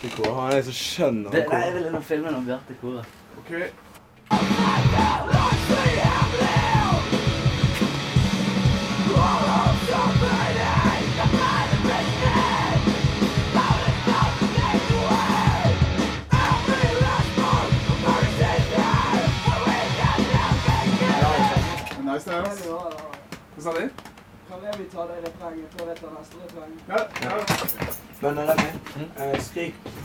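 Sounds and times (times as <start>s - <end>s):
speech: 0.0s - 6.4s, 22.2s - 30.0s
band members screaming vocals in studio: 4.3s - 7.1s, 9.0s - 12.9s, 13.5s - 21.9s
people shouting and yelling: 4.3s - 7.3s, 8.9s - 22.0s
dense driving band playing: 4.3s - 21.9s.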